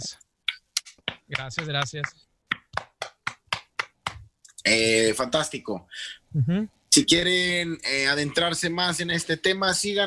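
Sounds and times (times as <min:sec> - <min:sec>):
hand claps: 0:00.5 - 0:04.3
speech: 0:01.3 - 0:02.3, 0:04.6 - 0:10.0.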